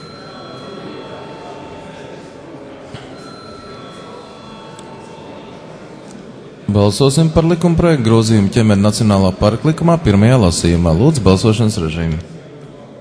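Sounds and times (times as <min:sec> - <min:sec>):
electric bell ringing in a parliament chamber before a vote: 0:00.0 - 0:06.3
faint noise: 0:00.0 - 0:12.9
speech: 0:06.7 - 0:12.3.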